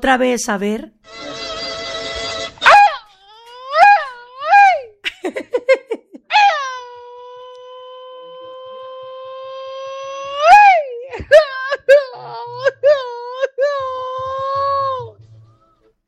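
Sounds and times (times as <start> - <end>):
speech: 0.0 - 1.4
man wailing a Mexican grito like sobbing: 1.3 - 5.0, 6.3 - 15.2.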